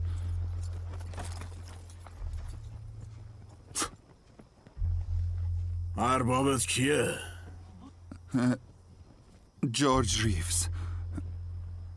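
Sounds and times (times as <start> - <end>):
low steady hum: 0.0 - 3.7, 4.6 - 11.9
horse hooves clip-clopping: 0.0 - 5.6
speech: 6.0 - 7.3, 8.3 - 8.7, 9.6 - 10.8.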